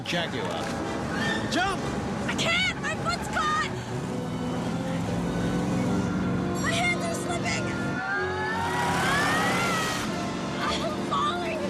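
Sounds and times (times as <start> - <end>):
truck and Jaguar car engines thundering up a road: 0.0 - 11.6
speech: 0.1 - 3.2.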